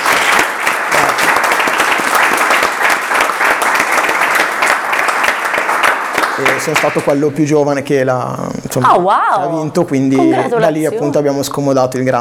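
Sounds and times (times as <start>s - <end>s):
crowd applause: 0.0s - 7.2s
speech: 6.4s - 12.2s
laughter: 10.0s - 11.2s.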